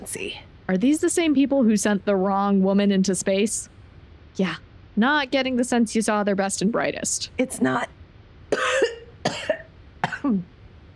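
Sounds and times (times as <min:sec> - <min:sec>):
speech: 0:00.0 - 0:03.8, 0:04.4 - 0:09.5, 0:10.2 - 0:10.5
harsh coughing: 0:08.6 - 0:10.4.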